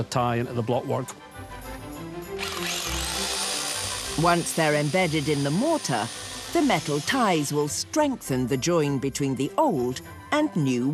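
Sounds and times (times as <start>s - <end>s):
speech: 0.0s - 1.3s, 4.2s - 10.9s
power drill boring into an old wall to set reinforcement ties: 2.3s - 7.9s.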